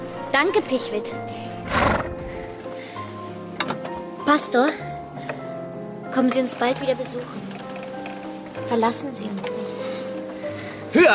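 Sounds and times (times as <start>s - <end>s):
speech: 0.4s - 1.9s, 4.3s - 4.9s, 6.1s - 7.4s, 8.7s - 9.9s, 10.9s - 11.1s
horse pulling a coach whinnying: 1.6s - 2.5s.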